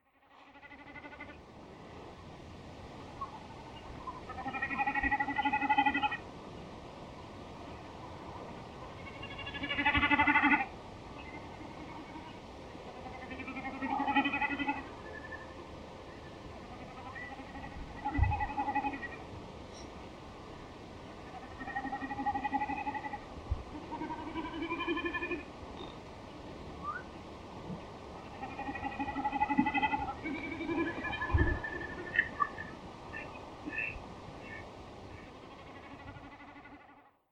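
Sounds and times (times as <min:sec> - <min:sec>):
common snipe bleating: 0:00.3 - 0:01.4, 0:04.2 - 0:06.2, 0:08.9 - 0:15.5, 0:16.6 - 0:19.2, 0:21.2 - 0:23.2, 0:23.8 - 0:25.9, 0:28.2 - 0:37.1.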